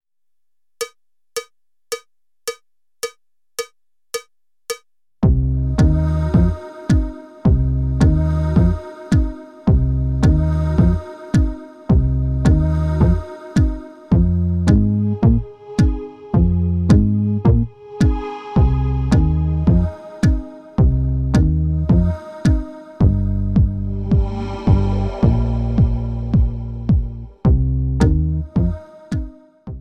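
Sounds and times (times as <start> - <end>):
pulsing electronic track: 5.2 - 28.8.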